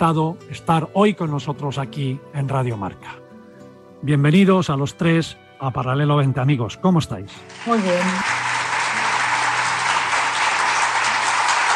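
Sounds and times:
speech: 0.0 - 3.2, 4.0 - 8.5
crowd applause: 7.5 - 11.7.

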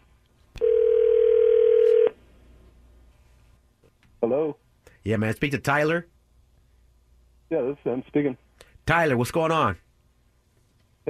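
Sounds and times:
ringback tone of an outgoing telephone call: 0.6 - 2.2
speech: 4.3 - 6.1, 7.5 - 9.8.

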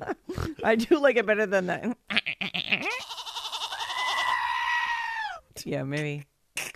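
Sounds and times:
speech: 0.0 - 2.1, 5.6 - 6.7
goat screaming with a wavering bleat: 2.1 - 5.4.

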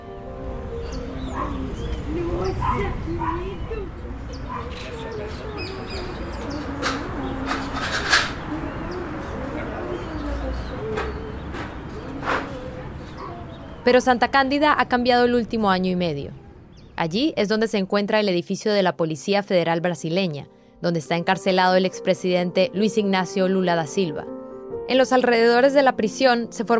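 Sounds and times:
birds chirping in a tree-filled area in Curitiba on a cold winter morning: 0.5 - 18.3
doves cooing: 0.9 - 14.6
dogs barking: 1.0 - 7.1, 11.0 - 13.9
speech: 2.6 - 4.0, 13.8 - 16.4, 17.0 - 26.7.

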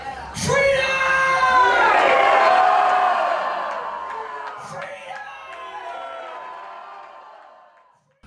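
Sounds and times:
large rally crowd shouting and cheering: 0.0 - 8.2.

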